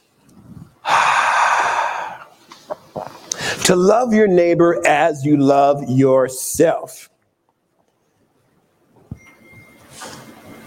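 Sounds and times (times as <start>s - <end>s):
deep breath drawn in as one long loud airy inhale: 0.8s - 2.4s, 3.3s - 3.6s
speech: 3.7s - 7.1s.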